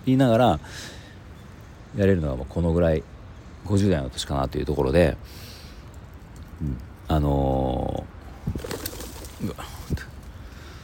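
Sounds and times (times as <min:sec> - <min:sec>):
speech: 0:00.0 - 0:01.0, 0:02.0 - 0:05.5, 0:06.6 - 0:08.8, 0:09.4 - 0:10.1
crowd of pigeons cooing under Tokyo Tower: 0:07.8 - 0:10.8.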